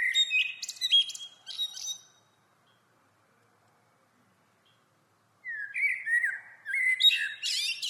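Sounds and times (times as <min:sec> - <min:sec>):
common blackbird Turdus merula singing: 0:00.0 - 0:03.0, 0:04.6 - 0:07.8.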